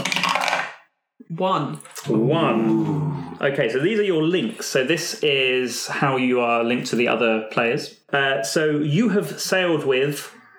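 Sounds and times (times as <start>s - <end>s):
white dice rattling across a hard tabletop: 0.0s - 0.8s
speech: 1.3s - 10.4s.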